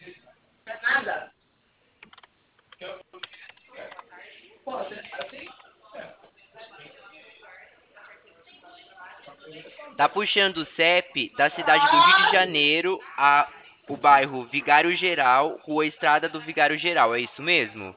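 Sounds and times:
typing on a computer keyboard: 0:02.0 - 0:04.0
speech: 0:10.0 - 0:17.9.

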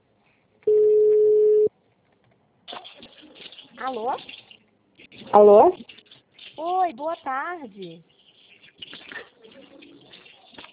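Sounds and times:
telephone ringback tone while a call is placed: 0:00.7 - 0:01.7
speech: 0:03.8 - 0:04.4, 0:05.3 - 0:05.9, 0:06.6 - 0:08.1.

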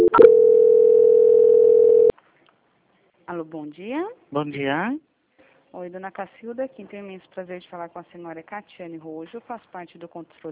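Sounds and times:
telephone call transfer tone beep: 0:00.0 - 0:02.1
speech: 0:03.5 - 0:05.1, 0:05.7 - 0:10.4.

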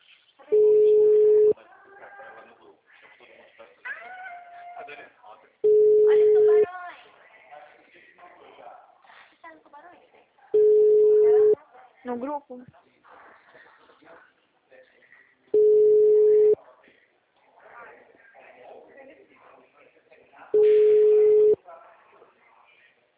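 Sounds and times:
telephone ringback tone while a call is placed: 0:00.6 - 0:01.5, 0:05.7 - 0:06.6, 0:10.6 - 0:11.6, 0:15.6 - 0:16.6, 0:20.6 - 0:21.6
speech: 0:12.1 - 0:13.0.

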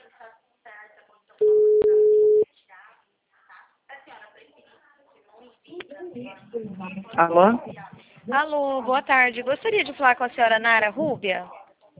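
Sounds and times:
telephone ringing tone on a call: 0:01.4 - 0:02.4
speech: 0:06.8 - 0:11.6.

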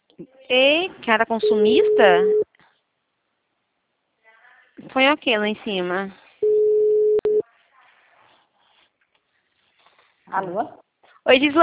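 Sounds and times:
faint noise: 0:00.0 - 0:11.6
speech: 0:00.2 - 0:02.4, 0:04.8 - 0:06.2, 0:10.3 - 0:11.6
dropped phone call tone beep: 0:01.4 - 0:02.4, 0:06.4 - 0:07.4.

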